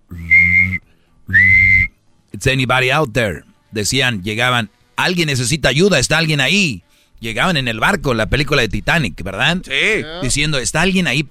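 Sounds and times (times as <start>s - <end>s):
whistle blasts: 0.2s - 1.9s
speech: 2.4s - 11.2s.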